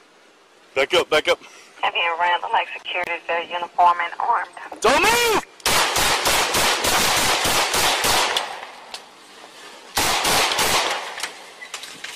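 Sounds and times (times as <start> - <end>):
speech: 0.8 - 5.5
gunshots fired during a police confrontation near a parking lot: 5.6 - 8.8, 10.0 - 11.4.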